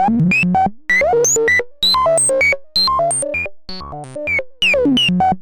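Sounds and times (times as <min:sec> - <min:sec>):
modular synthesizer voice with high filter resonance: 0:00.2 - 0:05.2.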